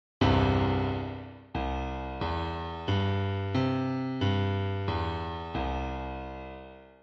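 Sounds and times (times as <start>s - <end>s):
grand piano C3 triad: 0.2s - 7.0s.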